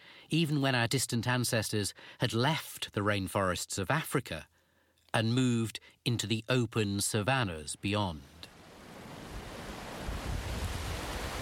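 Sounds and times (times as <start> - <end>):
speech: 0.3 - 4.5, 5.1 - 8.3
wind on a wet, windy British coastline: 8.3 - 11.3
breaking surf on a British coastline: 8.5 - 11.3.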